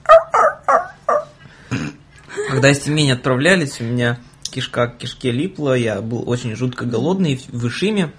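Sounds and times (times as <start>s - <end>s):
voice imitating a whining dog with whimpering yelps: 0.0s - 1.4s
speech: 2.5s - 8.1s.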